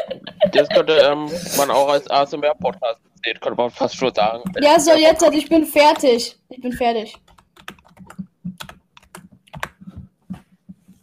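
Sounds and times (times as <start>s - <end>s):
laughter: 0.0s - 2.1s
speech: 0.5s - 7.3s
typing on a computer keyboard: 7.0s - 10.1s.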